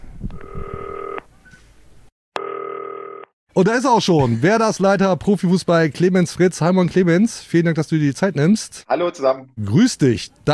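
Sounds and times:
electronic telephone ring: 0.4s - 1.2s, 2.4s - 3.3s
speech: 3.6s - 10.5s.

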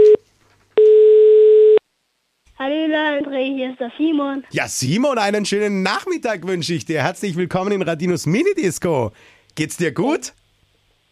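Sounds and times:
telephone ringback tone: 0.0s - 0.2s, 0.8s - 1.8s
speech: 2.9s - 10.4s.

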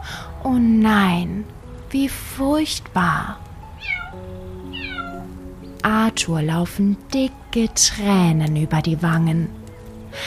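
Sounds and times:
speech: 0.4s - 3.4s, 5.8s - 10.2s
snow-white kitten meowing pitifully: 3.8s - 5.3s.

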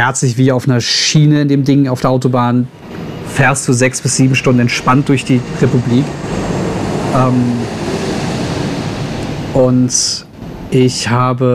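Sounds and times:
speech: 0.0s - 6.5s, 7.1s - 7.9s, 9.6s - 11.5s
airplane roar flying over on landing approach: 2.5s - 11.5s.

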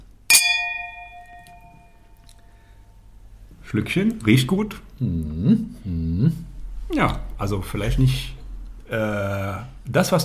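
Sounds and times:
wine glasses holding Riesling clinking in a toast: 0.3s - 2.2s
speech: 3.7s - 10.2s.

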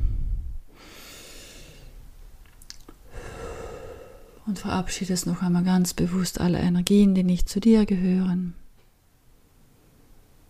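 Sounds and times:
deep breath during a guided relaxation exercise: 0.0s - 2.0s, 3.0s - 4.4s
speech: 4.5s - 8.6s.

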